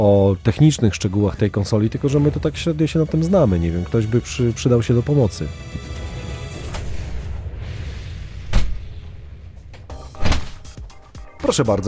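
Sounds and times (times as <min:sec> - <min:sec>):
speech: 0:00.0 - 0:05.8, 0:11.5 - 0:11.8
studio door opening and shutting: 0:05.7 - 0:07.0, 0:08.5 - 0:09.0, 0:09.6 - 0:10.8
low rumbling noise: 0:06.5 - 0:09.9.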